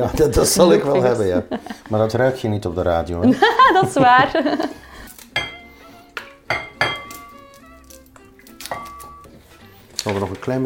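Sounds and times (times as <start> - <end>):
speech: 0.0 - 4.8, 10.0 - 10.6
laughter: 0.6 - 2.3, 3.1 - 5.1
utensil clinking and scraping in a bowl while mixing marinade: 6.5 - 9.3.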